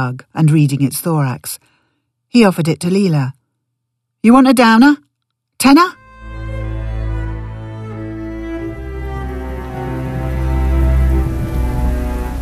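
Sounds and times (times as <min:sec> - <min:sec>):
speech: 0:00.0 - 0:01.7, 0:02.3 - 0:03.4, 0:04.2 - 0:05.0, 0:05.6 - 0:06.0
heavy rain falling on street: 0:09.3 - 0:12.4.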